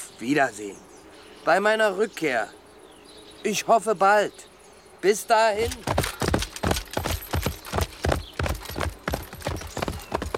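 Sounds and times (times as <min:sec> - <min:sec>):
speech: 0:00.2 - 0:02.6, 0:03.4 - 0:06.1
spurred horse hooves galloping into a dark forest: 0:05.6 - 0:10.3.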